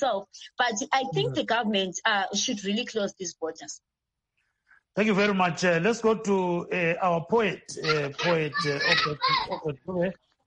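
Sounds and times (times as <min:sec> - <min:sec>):
speech: 0:00.0 - 0:04.0, 0:05.0 - 0:10.2
laughter: 0:01.1 - 0:01.4, 0:07.0 - 0:09.8
children playing and calling out: 0:07.7 - 0:09.7.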